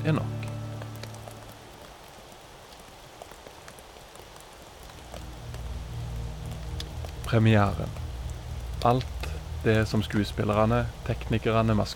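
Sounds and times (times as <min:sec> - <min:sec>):
speech: 0:00.0 - 0:00.4, 0:07.3 - 0:08.0, 0:08.8 - 0:11.9
rain dripping and pattering onto a surface: 0:00.0 - 0:11.9
low rumble: 0:04.9 - 0:11.9.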